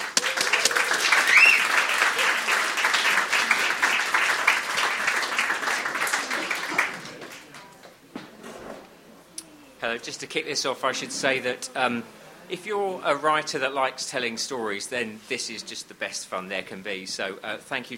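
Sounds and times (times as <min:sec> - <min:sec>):
room full of people applauding: 0:00.0 - 0:07.7
speech: 0:09.9 - 0:17.9.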